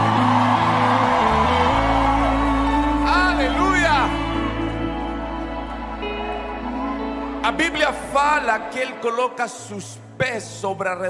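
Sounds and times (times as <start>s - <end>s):
high rising whoops: 0.0s - 7.4s
large crowd at a religious service shouting and cheering: 0.0s - 9.8s
steady low musical drone: 0.0s - 10.2s
speech: 7.5s - 11.0s.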